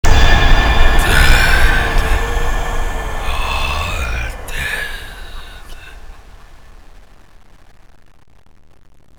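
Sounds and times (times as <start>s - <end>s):
zombie: 0.1s - 6.1s.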